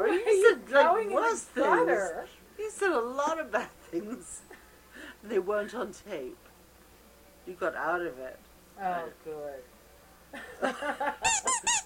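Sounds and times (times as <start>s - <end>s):
speech: 0.1s - 4.6s, 5.2s - 6.5s, 7.5s - 9.7s, 10.3s - 11.8s
laughter: 10.4s - 11.4s
high-pitched squeaks and sharp squeals: 11.2s - 11.8s.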